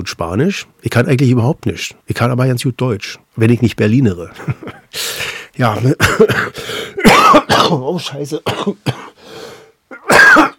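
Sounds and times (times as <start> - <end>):
speech: 0.0 - 9.4
person coughing in a short coughing fit: 6.0 - 9.2, 9.9 - 10.5.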